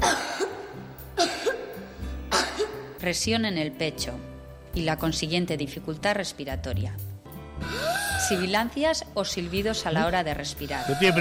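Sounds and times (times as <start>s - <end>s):
person coughing from an asthma attack: 0.0s - 2.9s
speech: 3.0s - 11.1s.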